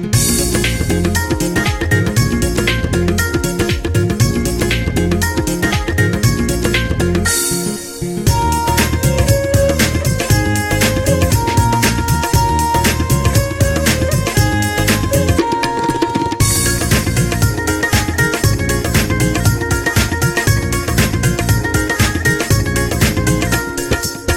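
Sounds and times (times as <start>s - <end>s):
traditional Punjabi ringtone music: 0.1s - 24.3s.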